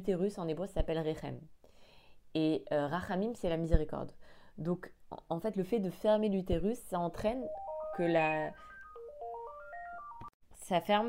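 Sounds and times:
speech: 0:00.0 - 0:01.6, 0:02.3 - 0:08.7, 0:10.7 - 0:11.0
cheerful electronic phone ringtone: 0:07.4 - 0:10.4.

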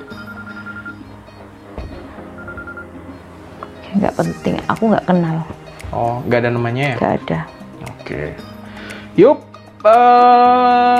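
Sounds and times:
phone ringing with a steady electronic ringtone: 0:00.0 - 0:01.4, 0:02.2 - 0:03.2
speech: 0:03.9 - 0:08.5, 0:09.2 - 0:10.9.

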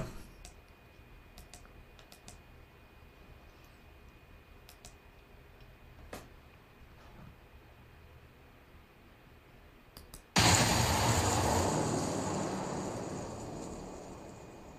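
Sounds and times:
quiet low hum: 0:00.0 - 0:14.7
computer mouse clicking to mute audio and start a recording: 0:00.4 - 0:02.5, 0:04.6 - 0:05.0, 0:10.0 - 0:10.3.

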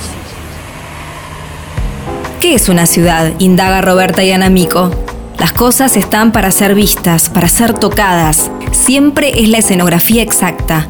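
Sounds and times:
vehicle passing by: 0:00.0 - 0:03.8
car traffic rumble: 0:00.0 - 0:10.2
speech: 0:02.4 - 0:10.8.

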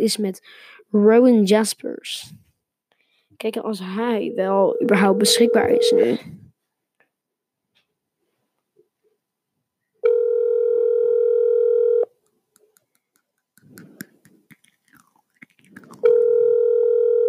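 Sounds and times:
speech: 0:00.0 - 0:02.4, 0:03.4 - 0:06.4
telephone ringback tone while a call is placed: 0:04.2 - 0:06.2, 0:10.0 - 0:12.1, 0:16.0 - 0:17.2
faint mouth noises: 0:12.6 - 0:16.3.

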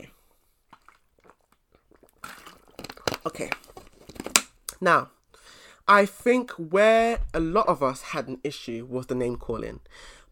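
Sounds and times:
swallowing: 0:00.0 - 0:04.3
person sipping water: 0:00.0 - 0:05.4
speech: 0:03.2 - 0:03.6, 0:04.8 - 0:05.2, 0:05.9 - 0:10.2
breathy exhale after drinking: 0:05.4 - 0:05.8, 0:09.9 - 0:10.3.

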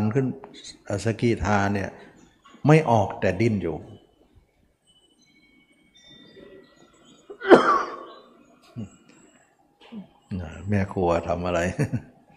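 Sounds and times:
speech: 0:00.1 - 0:03.9, 0:08.8 - 0:09.0, 0:09.9 - 0:12.1
person sneezing: 0:07.4 - 0:08.1.

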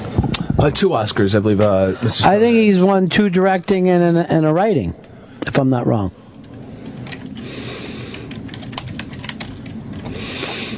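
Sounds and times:
low hum: 0:00.0 - 0:10.7
speech: 0:00.6 - 0:06.2
typing on a computer keyboard: 0:08.1 - 0:10.1.

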